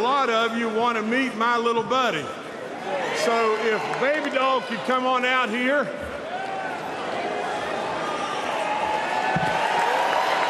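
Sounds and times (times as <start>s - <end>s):
speech: 0.2s - 6.0s
large convention crowd cheering: 2.8s - 5.5s, 6.1s - 10.4s.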